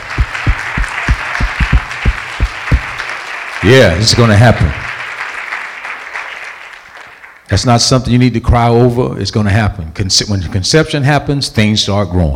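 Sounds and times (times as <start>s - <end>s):
audience clapping in a steady rhythm: 0.0s - 7.5s
speech: 3.6s - 4.8s, 7.5s - 12.3s.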